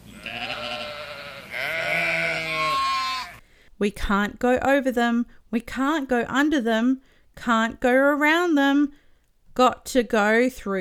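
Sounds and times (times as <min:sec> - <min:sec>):
lambs bleating: 0:00.0 - 0:03.4
speech: 0:03.8 - 0:09.0, 0:09.6 - 0:10.7.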